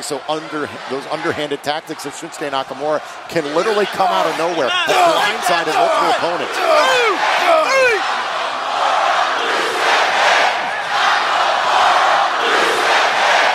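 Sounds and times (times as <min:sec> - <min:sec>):
speech: 0:00.0 - 0:07.3
arena crowd cheering at a wrestling match: 0:00.0 - 0:13.5
arena crowd chanting at a wrestling match: 0:03.5 - 0:13.5
arena crowd whistles and shouts: 0:03.7 - 0:08.6.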